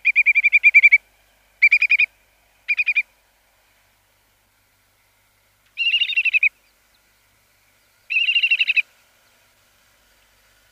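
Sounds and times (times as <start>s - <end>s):
whimbrel giving rippling whistled calls: 0.0s - 3.1s, 5.7s - 8.9s.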